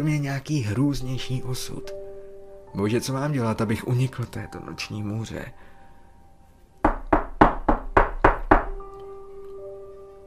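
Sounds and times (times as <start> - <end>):
speech: 0.0 - 2.0, 2.7 - 5.7
firm knocking on a door: 6.8 - 8.8.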